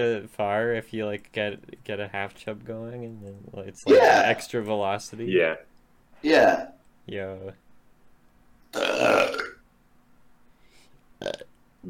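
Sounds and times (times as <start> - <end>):
speech: 0.0 - 7.6, 8.7 - 9.4
loud burp: 3.9 - 4.4, 8.7 - 9.6, 11.2 - 11.5.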